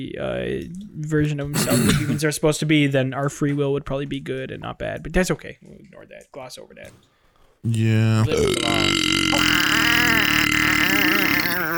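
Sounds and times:
speech: 0.0s - 9.7s
long loud beer burp with a deep rumbling tone: 1.6s - 2.1s, 7.8s - 11.7s.

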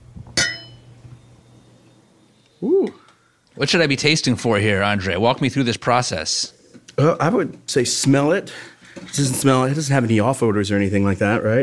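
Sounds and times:
low hum: 0.0s - 11.6s
wine glasses clinking in a toast: 0.4s - 0.9s
speech: 3.6s - 11.6s.

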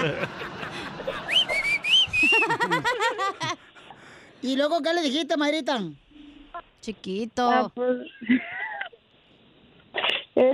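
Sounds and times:
speech: 0.0s - 0.5s, 4.4s - 6.0s, 6.8s - 8.6s
woman laughing: 0.0s - 3.6s, 8.2s - 8.9s
woman whistling a catcall through her lips: 1.3s - 2.5s.

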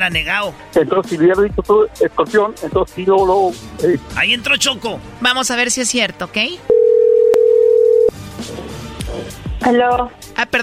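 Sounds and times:
speech: 0.0s - 6.7s, 9.6s - 10.6s
telephone dial tone after a dropped call: 6.7s - 8.1s.

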